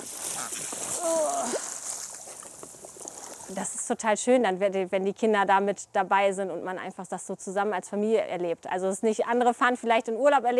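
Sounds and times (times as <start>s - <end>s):
water splashing and sloshing: 0.0s - 3.6s
speech: 3.5s - 10.5s.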